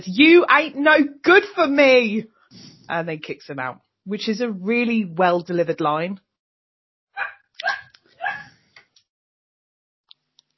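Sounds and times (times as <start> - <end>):
speech: 0.0 - 6.2
puppy yapping and whining from outside the room: 7.2 - 8.6.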